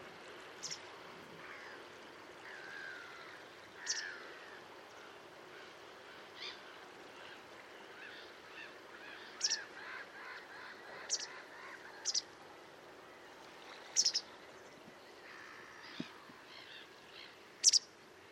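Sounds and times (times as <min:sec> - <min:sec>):
steady background hiss: 0:00.0 - 0:18.3
bird chirping: 0:00.6 - 0:00.8, 0:03.8 - 0:04.1, 0:09.4 - 0:09.7, 0:11.0 - 0:11.4, 0:12.0 - 0:12.2, 0:14.0 - 0:14.3, 0:16.6 - 0:17.9.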